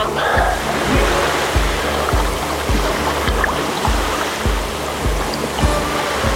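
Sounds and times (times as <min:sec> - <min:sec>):
ocean waves breaking: 0:00.0 - 0:06.3
regular low thuds: 0:00.0 - 0:06.3.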